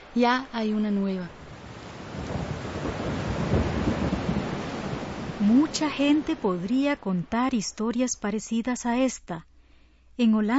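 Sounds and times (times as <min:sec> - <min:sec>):
heavy rain: 0:00.0 - 0:07.3
speech: 0:00.2 - 0:01.4, 0:05.5 - 0:09.5, 0:10.2 - 0:10.5
deep continuous rumble of thunder: 0:01.4 - 0:06.4.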